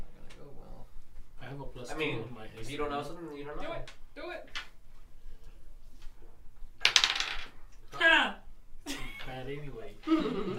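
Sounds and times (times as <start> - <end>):
speech: 1.6 - 4.6, 9.4 - 10.5
dice clattering across a hard tabletop: 6.8 - 7.6.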